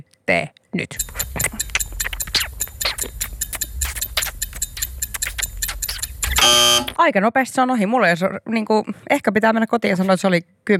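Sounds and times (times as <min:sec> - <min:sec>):
speech: 0:00.3 - 0:01.3, 0:06.5 - 0:10.7
clock ticking: 0:01.0 - 0:07.0.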